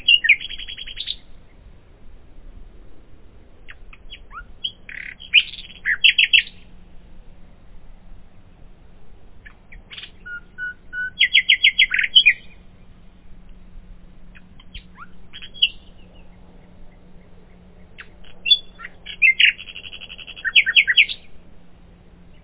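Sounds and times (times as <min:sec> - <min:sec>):
common nightingale singing: 0:00.0 - 0:01.7, 0:03.6 - 0:06.8, 0:09.4 - 0:12.9, 0:14.3 - 0:21.4.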